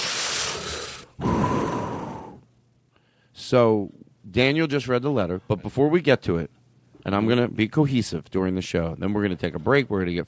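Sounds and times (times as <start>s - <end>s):
person taking a deep breath: 0.0s - 2.4s
speech: 3.5s - 10.2s.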